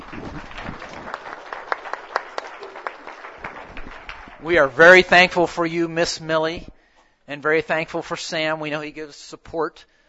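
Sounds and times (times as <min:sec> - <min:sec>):
sharp louder claps: 0:00.0 - 0:04.8
audience applauding: 0:00.0 - 0:05.1
speech: 0:04.4 - 0:06.7, 0:07.3 - 0:10.0.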